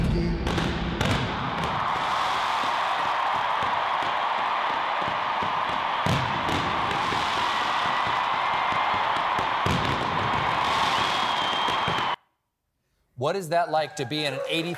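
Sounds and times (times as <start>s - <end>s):
booming fireworks at a stadium concert: 0.0s - 12.2s
huge crowd roaring at a stadium concert: 1.0s - 12.2s
speech: 13.2s - 14.7s.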